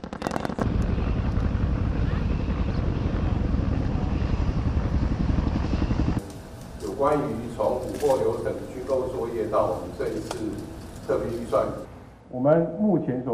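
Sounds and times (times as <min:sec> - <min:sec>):
sharp cracks: 0:00.0 - 0:01.5, 0:06.2 - 0:11.9
Cobra attack helicopter rotor chopping: 0:00.0 - 0:12.2
speech: 0:07.0 - 0:13.3.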